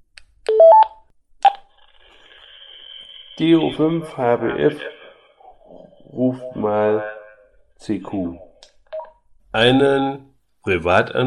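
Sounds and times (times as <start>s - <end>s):
DTMF keypad tones from entering a number on a radio handset: 0.5s - 1.6s
speech: 3.4s - 5.0s, 6.2s - 7.1s, 7.8s - 8.4s, 9.5s - 11.2s.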